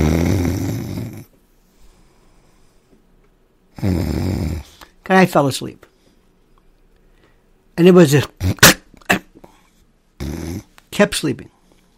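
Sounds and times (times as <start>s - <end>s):
man imitating a radio caller snoring on the phone line: 0.0s - 1.3s, 3.7s - 4.8s, 10.2s - 10.7s
speech: 5.1s - 5.9s, 7.8s - 8.7s, 11.0s - 11.6s.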